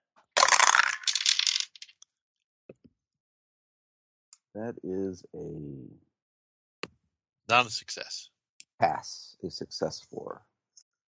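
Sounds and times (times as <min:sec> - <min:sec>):
dice rolling across a hard surface: 0:00.4 - 0:02.0
speech: 0:04.6 - 0:06.1, 0:07.5 - 0:10.5.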